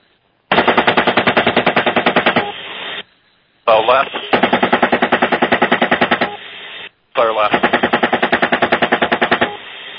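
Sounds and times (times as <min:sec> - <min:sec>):
machine gun firing from a vehicle at a truck: 0:00.5 - 0:03.0, 0:04.0 - 0:06.4, 0:07.4 - 0:09.7
speech: 0:03.8 - 0:04.7, 0:07.2 - 0:07.7.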